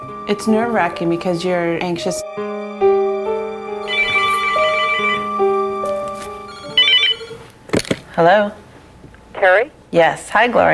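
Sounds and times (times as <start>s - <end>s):
speech: 0.3s - 2.4s, 8.2s - 8.6s, 9.4s - 10.7s
melodic electronic telephone ringtone at a home in California: 2.5s - 7.5s
bright telephone chirp: 3.8s - 5.4s.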